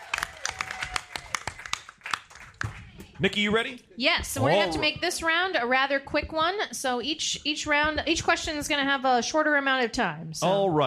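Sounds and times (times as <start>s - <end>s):
small audience clapping: 0.0s - 3.0s
speech: 3.2s - 10.8s.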